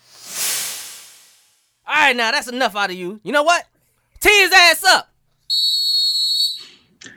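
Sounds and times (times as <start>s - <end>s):
short burst of noise: 0.0s - 1.8s
speech: 2.1s - 5.7s
shrill whistle being blown: 5.5s - 6.7s.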